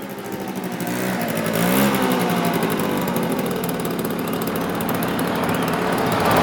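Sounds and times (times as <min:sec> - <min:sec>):
moped engine buzzing at high revs across a playground: 0:00.0 - 0:06.4.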